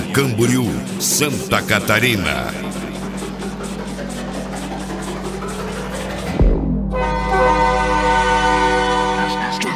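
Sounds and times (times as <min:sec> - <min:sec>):
speech: 0:00.2 - 0:02.8
low engine hum of small road train: 0:00.7 - 0:09.3
small road train horn blast in Balneário Camboriú, Santa Catarina: 0:06.9 - 0:09.7.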